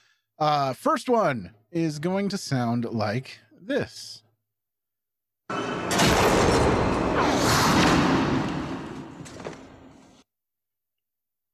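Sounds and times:
speech: 0:00.4 - 0:04.2, 0:05.5 - 0:06.4
gunshot in a film scene of a man shot in the head: 0:05.5 - 0:10.0.

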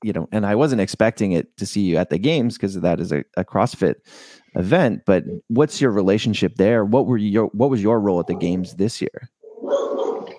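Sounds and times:
speech: 0:00.0 - 0:10.0
dog letting out a drawn-out bark: 0:08.2 - 0:08.6, 0:09.6 - 0:10.3.

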